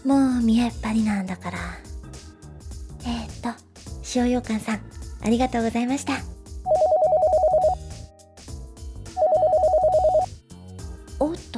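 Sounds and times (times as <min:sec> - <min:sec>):
speech: 0:00.0 - 0:01.9, 0:03.0 - 0:06.3
soft music: 0:00.0 - 0:11.5
telephone ringing with a rapid warbling trill: 0:06.7 - 0:07.8, 0:09.2 - 0:10.3.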